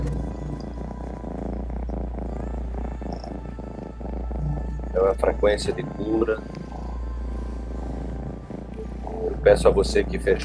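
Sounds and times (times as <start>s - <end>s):
cat purring: 0.0s - 10.4s
speech: 5.0s - 6.6s, 9.4s - 10.4s.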